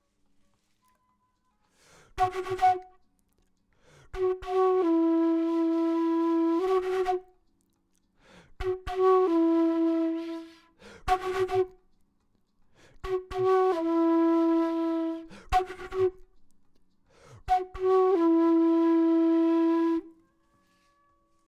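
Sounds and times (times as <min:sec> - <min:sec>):
flute playing an intro: 0:02.2 - 0:03.1, 0:04.1 - 0:07.4, 0:08.6 - 0:11.9, 0:13.0 - 0:16.4, 0:17.4 - 0:21.0.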